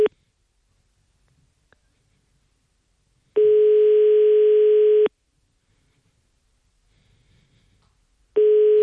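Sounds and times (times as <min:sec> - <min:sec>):
telephone ringback tone on an unanswered call: 0:03.4 - 0:05.1, 0:08.4 - 0:08.8.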